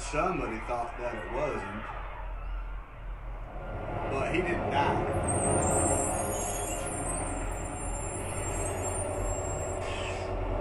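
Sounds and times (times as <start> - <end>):
speech: 0.1 - 2.1, 4.1 - 6.2
bus engine rumble while arriving: 3.4 - 10.5
bus air brakes hissing: 8.2 - 10.5.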